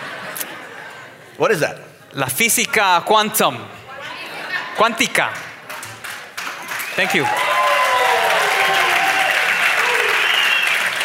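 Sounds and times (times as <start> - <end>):
speech: 1.4 - 3.8, 4.8 - 5.4, 7.0 - 7.5
audience applause: 5.6 - 11.0.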